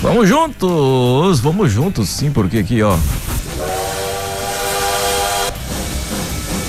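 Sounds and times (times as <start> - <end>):
speech: 0.1 - 3.3
loud clatter of the rolling train: 3.0 - 6.6
sustained multi-tone train horn: 3.5 - 5.6.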